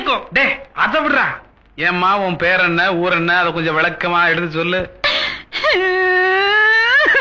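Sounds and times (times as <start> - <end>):
speech: 0.2 - 7.2
woman crying and whimpering: 5.0 - 7.2.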